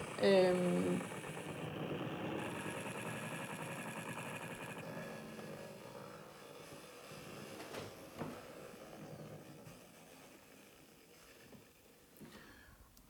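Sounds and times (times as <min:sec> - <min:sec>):
synthesized white-noise-like wash from a recording of a can rolling across a table: 0:00.0 - 0:06.1
speech: 0:00.2 - 0:01.2.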